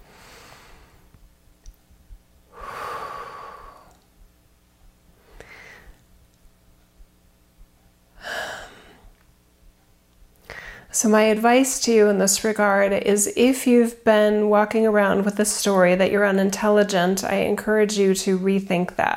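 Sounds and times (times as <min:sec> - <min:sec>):
soft deep breathing during a guided relaxation: 0:00.0 - 0:01.2, 0:02.5 - 0:04.0, 0:05.2 - 0:06.0, 0:08.2 - 0:09.2, 0:10.4 - 0:10.9
speech: 0:11.0 - 0:19.1.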